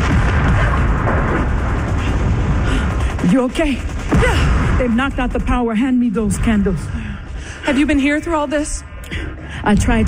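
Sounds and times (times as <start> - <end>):
tank cannon fire hitting buildings: 0.0 - 2.6
speech: 3.3 - 7.1, 7.7 - 10.0.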